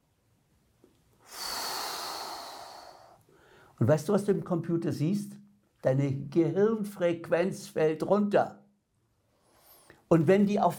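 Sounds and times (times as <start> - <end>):
slow deep breath in during a guided relaxation exercise: 1.2 - 3.8, 9.3 - 10.1
speech: 3.8 - 8.6, 10.1 - 10.7.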